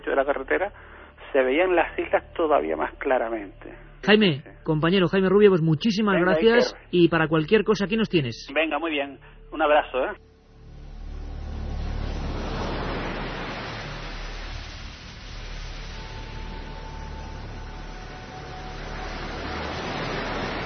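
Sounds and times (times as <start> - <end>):
speech: 0.2 - 10.3
ocean waves off the Canary Islands: 10.2 - 20.6.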